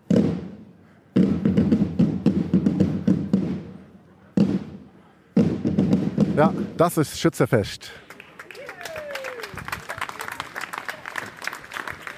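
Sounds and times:
marching drum corps drumming: 0:01.2 - 0:03.8, 0:05.4 - 0:06.8
speech: 0:06.4 - 0:08.0.

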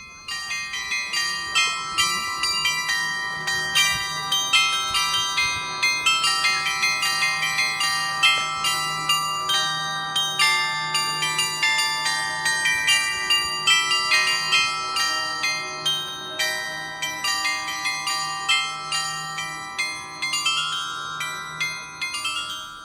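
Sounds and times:
facade bell glockenspiel chiming a melody outdoors: 0:00.0 - 0:22.8.

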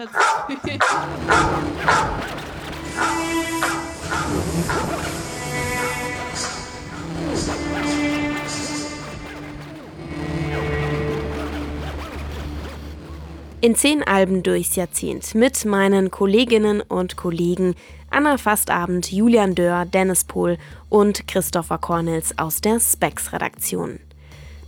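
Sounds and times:
speech: 0:00.0 - 0:02.4, 0:13.6 - 0:24.1
dog barking with yips and whimpers: 0:00.0 - 0:08.5
sustained tones: 0:00.0 - 0:14.6.

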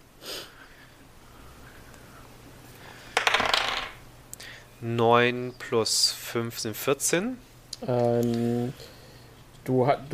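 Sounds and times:
dice clattering and rattling across a hard table: 0:03.2 - 0:04.0
speech: 0:04.8 - 0:09.0, 0:09.6 - 0:10.1.

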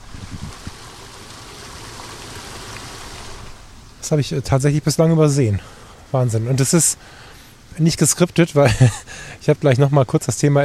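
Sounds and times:
small stream spilling over a little waterfall: 0:00.0 - 0:03.9
speech: 0:04.0 - 0:10.6
laughter: 0:08.6 - 0:09.1.

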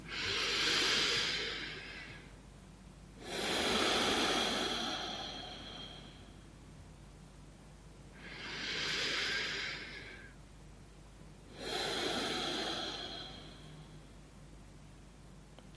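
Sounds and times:
deep breaths through the nose: 0:00.0 - 0:02.3, 0:03.2 - 0:06.5, 0:08.2 - 0:10.4, 0:11.5 - 0:14.1.

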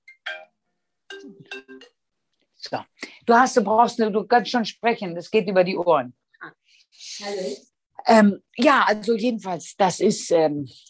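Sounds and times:
telephone ringing with a short electronic melody: 0:01.1 - 0:02.0
speech: 0:01.2 - 0:02.0, 0:02.6 - 0:10.8.

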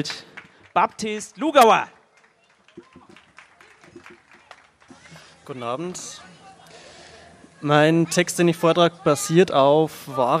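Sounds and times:
speech: 0:00.0 - 0:02.0, 0:05.5 - 0:06.3, 0:07.6 - 0:10.3
audience applauding a performer introduced for a reading: 0:00.0 - 0:06.0.

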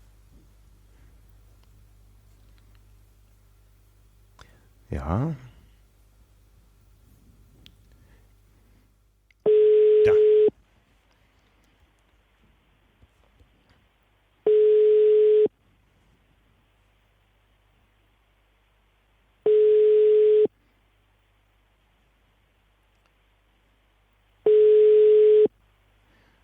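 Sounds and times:
speech: 0:04.9 - 0:05.5
telephone busy tone while calling a triathlon press office in Cologne: 0:09.4 - 0:10.5, 0:14.5 - 0:15.5, 0:19.5 - 0:20.5, 0:24.5 - 0:25.5.

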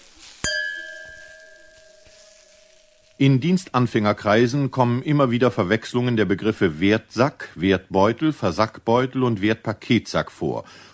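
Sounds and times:
two wine glasses of Riesling clinking in a toast: 0:00.4 - 0:03.3
speech: 0:03.2 - 0:10.9.

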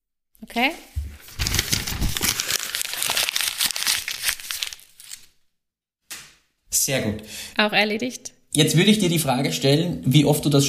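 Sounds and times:
speech: 0:00.4 - 0:00.9, 0:06.8 - 0:10.6
sheet of paper crumpled and thrown: 0:01.1 - 0:05.4.

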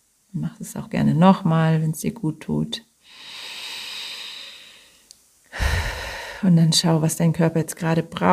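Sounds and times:
speech: 0:00.4 - 0:03.3, 0:06.4 - 0:08.3
person drawing a long airy breath in: 0:03.0 - 0:06.4
person exhaling fully like a sigh: 0:03.1 - 0:06.5.

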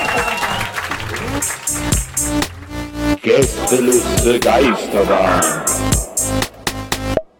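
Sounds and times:
audience applause: 0:00.0 - 0:02.8
tonal music or voices: 0:03.2 - 0:07.2
speech: 0:03.3 - 0:06.4.

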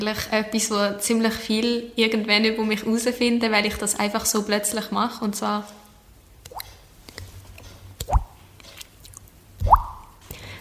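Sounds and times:
speech: 0:00.0 - 0:05.8
voice imitating dripping water with wet mouth plops: 0:09.0 - 0:10.2.

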